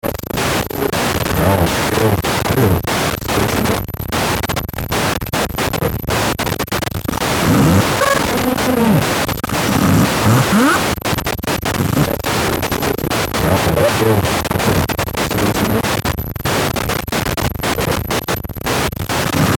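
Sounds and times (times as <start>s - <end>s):
distorted radio transmission static signal: 0.0s - 19.5s.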